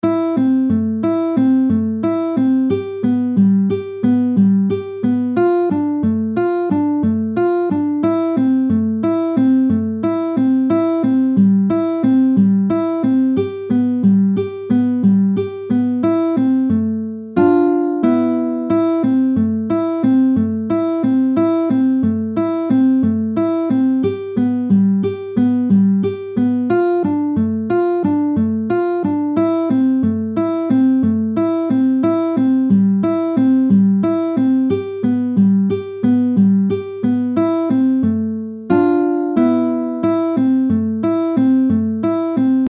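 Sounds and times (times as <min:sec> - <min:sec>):
guitar: 0:00.0 - 0:42.6.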